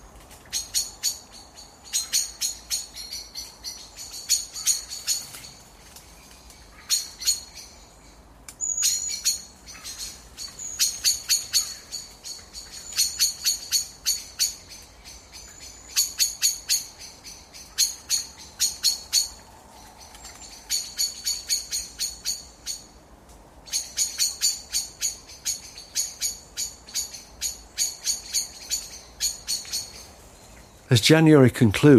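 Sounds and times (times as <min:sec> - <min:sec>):
blackbirds calling at an evening roost: 0:00.0 - 0:31.9
speech: 0:30.9 - 0:31.9.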